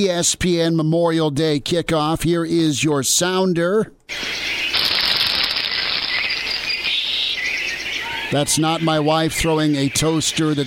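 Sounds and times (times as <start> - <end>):
speech: 0.0 - 5.0, 8.3 - 10.6
loud steady sizzling hiss: 4.1 - 7.4
faint bird chirps: 4.1 - 10.6.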